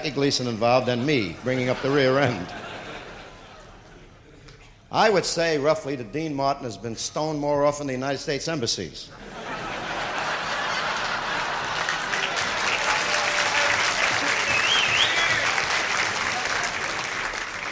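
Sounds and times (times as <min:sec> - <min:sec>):
speech: 0:00.0 - 0:02.7, 0:04.9 - 0:09.4
laughter: 0:00.2 - 0:04.5, 0:09.1 - 0:17.7
sustained applause from a large audience: 0:10.1 - 0:17.7
audience cheers: 0:11.8 - 0:17.7
audience whistles: 0:14.2 - 0:15.6.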